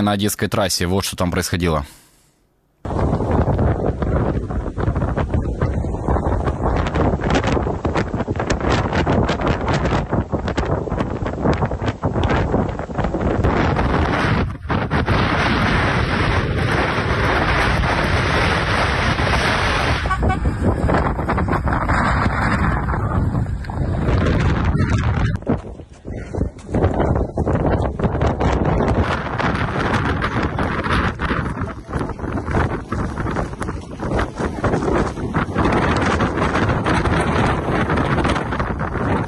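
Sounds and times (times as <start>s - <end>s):
speech: 0.0s - 2.0s
blizzard wind buffeting the microphone in a snowstorm in southern Ukraine: 2.8s - 39.2s.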